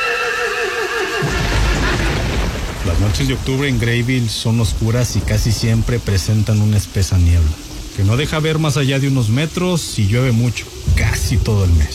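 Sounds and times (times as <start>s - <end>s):
horse giving a long shrill whinny: 0.0s - 2.3s
low heavy rumbling noise: 1.2s - 11.9s
speech: 2.9s - 11.9s.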